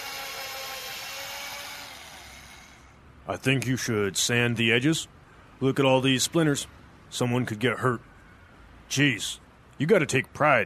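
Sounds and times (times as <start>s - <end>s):
power drill boring bolt holes into a wooden 2x4 board: 0.0s - 3.0s
speech: 3.3s - 8.1s, 8.9s - 10.6s.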